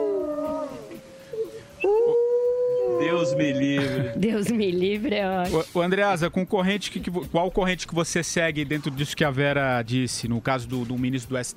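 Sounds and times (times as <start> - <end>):
wolf howling: 0.0 - 4.6
speech: 3.2 - 11.5.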